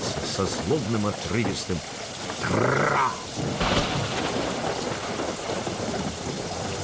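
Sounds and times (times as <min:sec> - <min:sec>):
heavy rain in a storm: 0:00.0 - 0:06.8
speech: 0:00.4 - 0:03.8
deep rolling thunder: 0:02.3 - 0:06.8.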